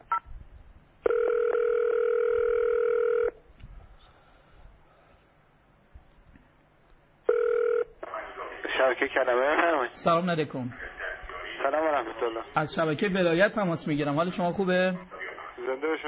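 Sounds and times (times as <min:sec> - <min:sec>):
faint noise: 0:00.0 - 0:16.0
telephone ringing tone on an automated phone menu: 0:01.0 - 0:03.4, 0:07.3 - 0:08.0
speech: 0:09.1 - 0:11.0, 0:12.2 - 0:15.1.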